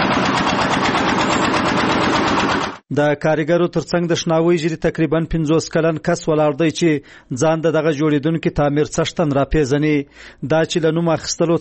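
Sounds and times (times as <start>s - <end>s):
machine engine lifting bricks at a construction site in cold weather: 0.0s - 2.8s
rhythmic knocking pulse from a brick-lifting machine: 0.0s - 2.8s
speech: 2.9s - 11.6s.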